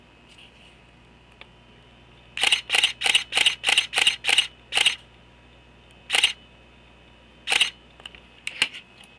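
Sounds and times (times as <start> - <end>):
EOS Kiss X4 camera shutter: 2.4 - 5.0, 6.1 - 6.4, 7.5 - 7.8.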